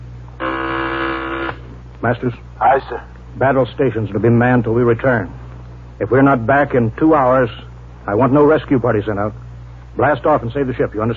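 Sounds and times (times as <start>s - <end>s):
intercom phone buzzing: 0.0s - 3.0s
low hum: 0.0s - 11.1s
speech: 2.0s - 5.4s, 6.0s - 9.4s, 10.0s - 11.1s.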